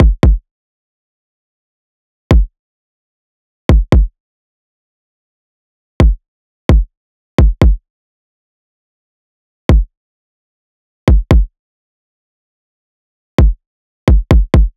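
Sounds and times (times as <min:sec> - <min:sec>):
kick drum loop: 0:00.0 - 0:00.4, 0:03.7 - 0:04.1, 0:06.0 - 0:07.8, 0:11.1 - 0:11.5, 0:13.4 - 0:14.7.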